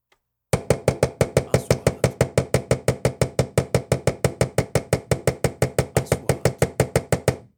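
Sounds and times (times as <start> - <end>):
hammer: 0.6 - 7.5.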